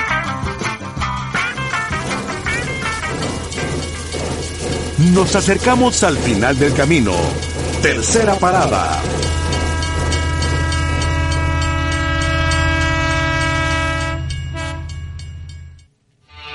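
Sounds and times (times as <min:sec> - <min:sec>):
train locomotive running noise: 0:00.0 - 0:15.9
speech: 0:05.0 - 0:09.1
train locomotive horn: 0:09.2 - 0:15.0.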